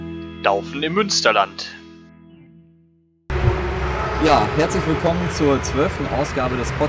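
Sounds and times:
speech: 0:00.5 - 0:01.8, 0:04.2 - 0:06.8
large crowd of spectators murmuring: 0:03.3 - 0:06.8
sustained tone: 0:03.3 - 0:06.8.

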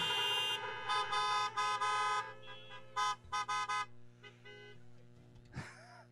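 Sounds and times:
car horns honking: 0:00.0 - 0:05.4.

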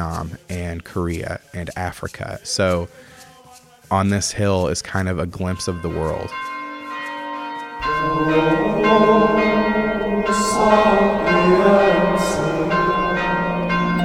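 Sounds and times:
speech: 0:00.0 - 0:03.1, 0:03.9 - 0:06.5, 0:08.1 - 0:09.6, 0:10.3 - 0:12.5
church bells pealing: 0:07.8 - 0:14.0.

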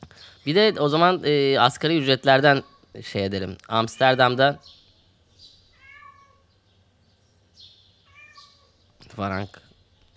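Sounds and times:
speech: 0:00.4 - 0:04.8, 0:09.1 - 0:09.6
cat meowing loudly wanting to go outside: 0:02.4 - 0:03.0, 0:05.7 - 0:06.5, 0:08.0 - 0:08.8.

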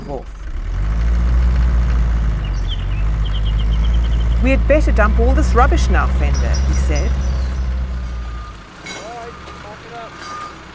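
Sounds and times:
heavy truck engine rumble at a recycling yard: 0:00.0 - 0:10.7
steady traffic noise: 0:00.0 - 0:10.7
speech: 0:00.1 - 0:00.4, 0:04.4 - 0:07.3
short rising beeps: 0:06.7 - 0:10.6.

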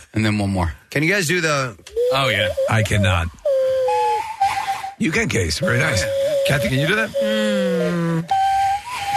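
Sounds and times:
speech: 0:00.2 - 0:03.4, 0:05.0 - 0:08.4
hollow hooting cupped-hand whistle: 0:01.9 - 0:09.1.

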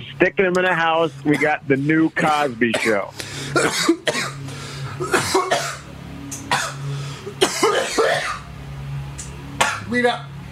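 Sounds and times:
low steady hum: 0:00.0 - 0:10.5
speech: 0:00.2 - 0:04.4, 0:09.9 - 0:10.3
harsh hacking coughing: 0:01.3 - 0:01.6, 0:02.6 - 0:08.5, 0:09.6 - 0:09.9.

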